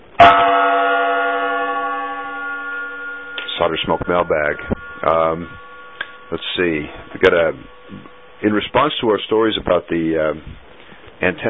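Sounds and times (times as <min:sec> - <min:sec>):
gong struck: 0:00.1 - 0:09.0
speech: 0:03.6 - 0:05.7, 0:06.3 - 0:10.6, 0:11.2 - 0:11.4.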